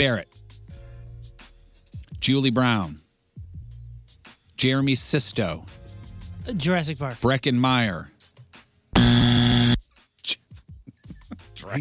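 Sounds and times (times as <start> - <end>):
speech: 0.0 - 0.4, 2.2 - 3.0, 4.6 - 5.8, 6.4 - 8.1, 11.6 - 11.8
loud harsh game show buzzer: 9.0 - 9.8.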